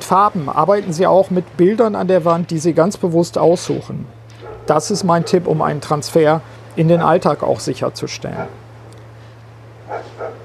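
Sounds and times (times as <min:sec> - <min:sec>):
steady low electrical hum: 0:00.0 - 0:10.4
speech: 0:00.1 - 0:08.6
neighbour's dog barking: 0:04.4 - 0:05.5, 0:08.4 - 0:08.6, 0:09.9 - 0:10.4.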